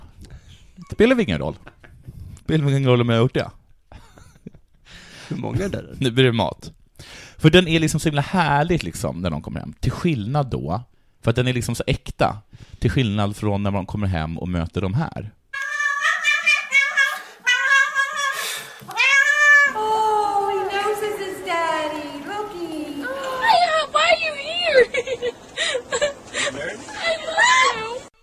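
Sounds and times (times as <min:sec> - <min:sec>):
speech: 0:00.8 - 0:01.8, 0:02.5 - 0:03.6, 0:05.3 - 0:15.4
cat meowing: 0:15.6 - 0:22.3
laughter: 0:19.8 - 0:28.0.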